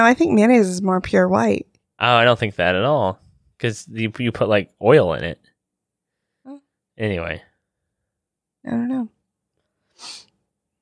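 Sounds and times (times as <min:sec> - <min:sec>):
speech: 0:00.0 - 0:05.5, 0:06.5 - 0:07.5, 0:08.6 - 0:09.2
nasal sniffle: 0:09.9 - 0:10.3.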